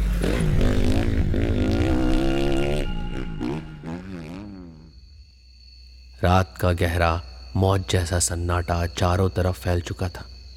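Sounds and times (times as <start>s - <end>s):
motorcycle engine revving while riding: 0.0s - 4.9s
speech: 6.2s - 10.3s.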